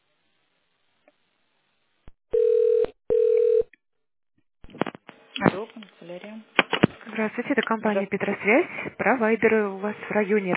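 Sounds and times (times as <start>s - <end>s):
electronic telephone keypad DTMF tones: 2.4s - 3.7s
speech: 7.4s - 10.5s.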